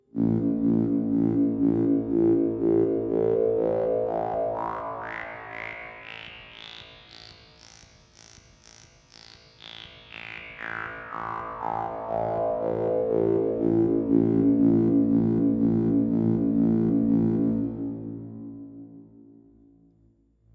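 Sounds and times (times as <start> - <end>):
Trautonium filter play: 0.0 - 6.2, 11.6 - 19.8.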